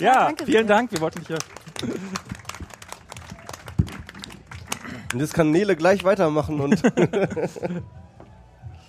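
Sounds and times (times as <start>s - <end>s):
speech: 0.0s - 1.9s, 5.1s - 8.0s
small group applauding: 0.0s - 6.3s
laughter: 1.3s - 2.7s, 6.5s - 8.0s.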